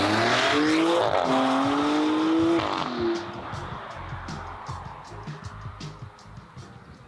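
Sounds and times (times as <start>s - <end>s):
Maserati Grecale Trofeo SUV engine revving hard: 0.0s - 5.6s.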